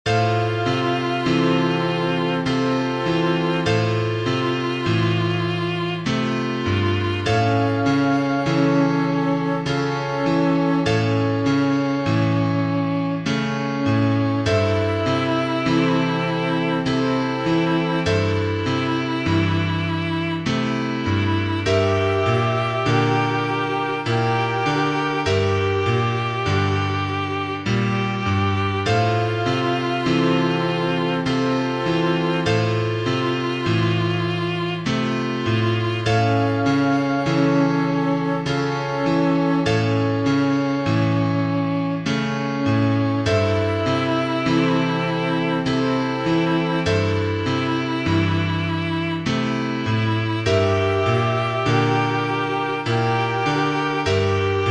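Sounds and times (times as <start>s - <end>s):
grand piano playing ballroom music: 0.0s - 54.6s
violin playing ballroom music: 0.0s - 54.6s
flute playing ballroom music: 0.1s - 54.6s.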